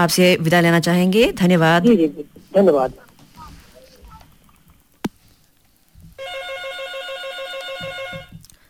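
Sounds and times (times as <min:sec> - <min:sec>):
speech: 0:00.0 - 0:03.0
phone ringing with a warbling electronic tone: 0:06.2 - 0:08.4.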